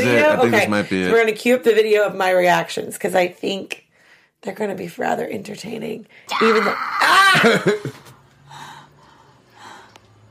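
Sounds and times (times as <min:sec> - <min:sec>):
speech: 0:00.1 - 0:03.8, 0:04.4 - 0:08.0
heavy breathing: 0:08.3 - 0:10.2.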